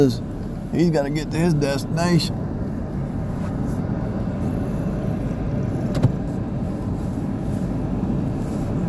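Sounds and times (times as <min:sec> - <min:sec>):
speech: 0:00.0 - 0:02.4
car driving in traffic with engine and tire rumble: 0:00.0 - 0:08.8.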